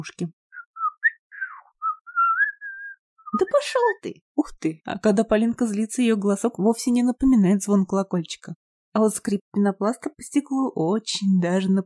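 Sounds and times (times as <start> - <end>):
speech: 0.0 - 0.4, 3.3 - 11.8
man whistling a meandering tune while walking toward the edge of a forest: 0.5 - 3.4.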